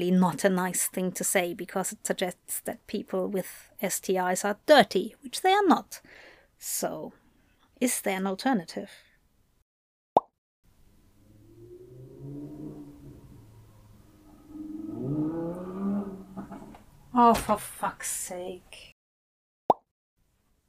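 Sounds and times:
speech: 0:00.0 - 0:07.2, 0:07.8 - 0:09.0, 0:17.2 - 0:18.9
motorcycle passing outside: 0:10.8 - 0:17.2.

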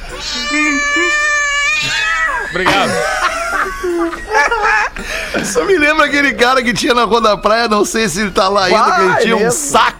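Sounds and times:
cat meowing with a long drawn-out meow: 0:00.0 - 0:02.6
speech: 0:00.2 - 0:01.0, 0:03.8 - 0:09.9
laughter: 0:02.4 - 0:06.1, 0:08.4 - 0:09.9.

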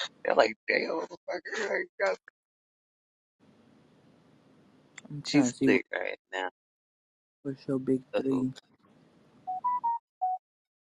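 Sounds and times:
speech: 0:00.0 - 0:02.3, 0:05.1 - 0:06.6, 0:07.4 - 0:08.7
phone text-message notification beeps: 0:09.5 - 0:10.4.

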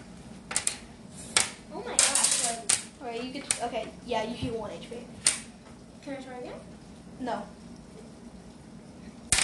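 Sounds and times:
dice rolled on a hard tabletop: 0:01.4 - 0:02.9
speech: 0:03.2 - 0:05.4, 0:06.0 - 0:07.6.

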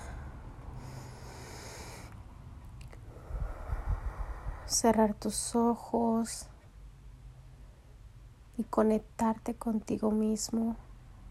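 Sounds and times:
slow deep breath inhaled with a soft airy hiss: 0:00.2 - 0:02.2, 0:03.0 - 0:04.7
fuller rough exhale: 0:00.7 - 0:02.2, 0:03.0 - 0:04.7
speech: 0:04.7 - 0:06.5, 0:08.6 - 0:10.8.

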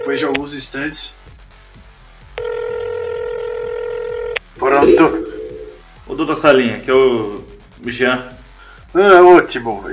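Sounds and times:
speech: 0:00.0 - 0:01.3, 0:04.6 - 0:05.3, 0:06.2 - 0:09.9
telephone ringing with electronic tone: 0:02.4 - 0:05.8.

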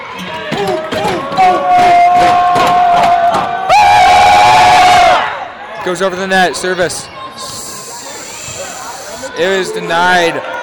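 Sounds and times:
crowd cheering at a volleyball match: 0:00.0 - 0:10.6
shouts and whoops: 0:01.4 - 0:05.4
speech: 0:05.9 - 0:07.2, 0:09.4 - 0:10.6.

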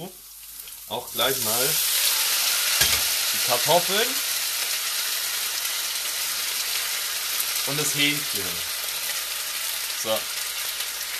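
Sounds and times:
speech: 0:00.0 - 0:00.2, 0:00.9 - 0:01.9, 0:02.8 - 0:04.3, 0:07.6 - 0:08.8, 0:10.0 - 0:10.4
chopped onions sizzling in hot frying fat: 0:00.0 - 0:11.1.

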